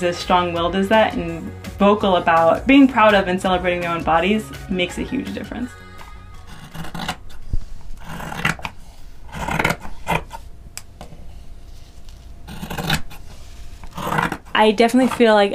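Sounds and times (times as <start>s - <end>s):
speech: 0.0s - 5.8s, 14.6s - 15.5s
scissors slicing through fabric: 6.4s - 7.4s, 8.0s - 10.4s, 12.5s - 13.2s, 13.8s - 15.3s.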